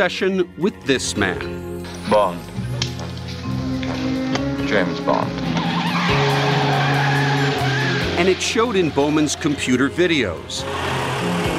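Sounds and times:
speech: 0.0s - 2.8s, 4.0s - 6.4s, 8.2s - 11.5s
steady car engine roar: 4.4s - 11.5s
car tires squealing in a skid at high speed around an obstacle course: 5.4s - 11.5s.

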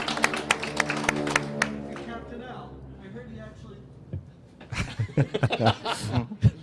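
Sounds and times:
small crowd clapping: 0.0s - 2.2s
laughter: 4.6s - 6.6s.

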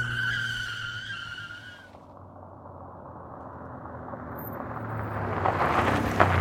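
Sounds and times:
truck engine accelerating hard: 0.0s - 6.3s
truck tires screeching: 0.0s - 6.3s.

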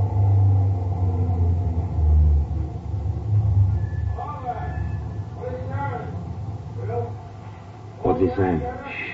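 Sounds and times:
truck engine rumbling as it slows to a stop: 0.0s - 9.1s
voices: 4.1s - 9.1s
speech: 8.4s - 8.8s.

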